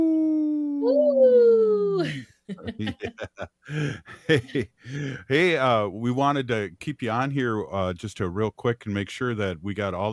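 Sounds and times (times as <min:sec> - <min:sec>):
person imitating a wolf howl: 0:00.0 - 0:01.9
laughter: 0:02.0 - 0:05.4
speech: 0:02.0 - 0:10.1.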